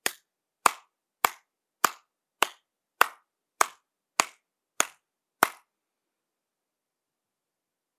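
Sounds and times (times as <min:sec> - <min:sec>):
sharp hand claps: 0:00.0 - 0:05.7.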